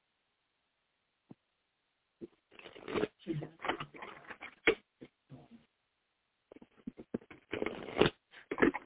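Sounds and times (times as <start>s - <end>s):
shuffling a deck of oracle cards: 2.6s - 4.8s, 6.5s - 8.8s.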